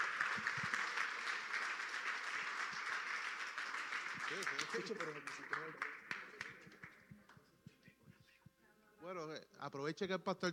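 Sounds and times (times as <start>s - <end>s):
large crowd applauding: 0.0s - 7.0s
speech: 4.3s - 6.0s, 9.0s - 10.5s.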